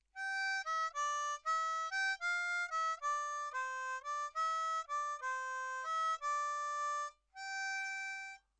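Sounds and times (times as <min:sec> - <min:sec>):
4 hole harmonica playing main melody: 0:00.2 - 0:08.4.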